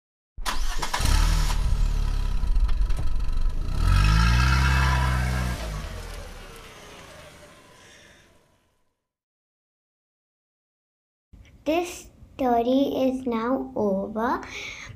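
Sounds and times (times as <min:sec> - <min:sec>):
car engine cranking and starting: 0:00.4 - 0:08.7
speech: 0:11.7 - 0:14.9.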